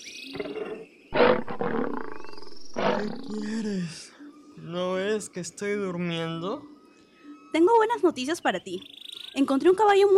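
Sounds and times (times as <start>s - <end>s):
lion roaring in a told story: 0.4s - 3.6s
speech: 5.3s - 6.7s, 7.5s - 10.1s.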